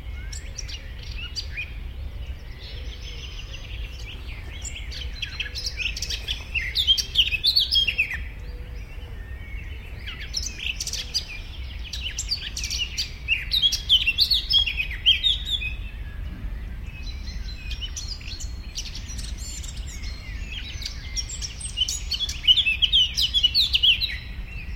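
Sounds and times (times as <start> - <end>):
Eurasian blackcap song, Sylvia atricapilla: 2.6 - 24.7
low rumble: 15.8 - 20.0.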